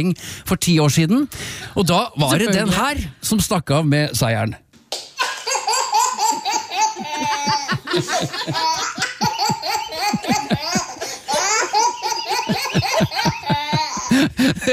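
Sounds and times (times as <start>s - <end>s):
speech: 0.0s - 4.6s, 8.0s - 8.8s
baby laughing heartily: 5.2s - 14.7s.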